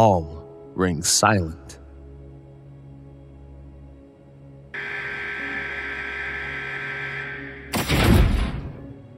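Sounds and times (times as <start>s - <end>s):
speech: 0.0s - 1.8s
steady low hum: 4.8s - 8.9s.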